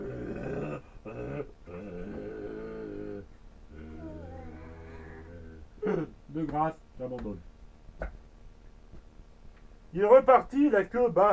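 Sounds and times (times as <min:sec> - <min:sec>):
human voice imitating a mournful lion roar: 0:00.0 - 0:06.1
speech: 0:05.9 - 0:08.2, 0:09.9 - 0:11.3.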